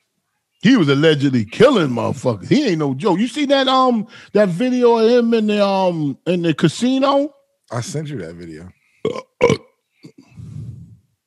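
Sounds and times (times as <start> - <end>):
speech: 0.6 - 9.6
person belching close to a microphone: 9.0 - 10.5.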